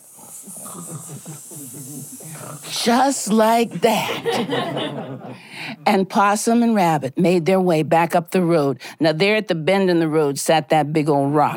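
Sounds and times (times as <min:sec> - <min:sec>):
voice imitating a sleeping snake's hiss: 0:00.0 - 0:04.3
laughter: 0:00.4 - 0:05.5
speech: 0:00.8 - 0:11.5.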